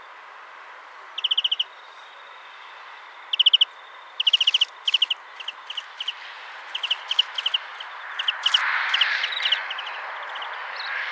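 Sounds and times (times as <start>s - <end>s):
European greenfinch Chloris chloris calls: 1.1s - 2.1s, 3.3s - 10.6s.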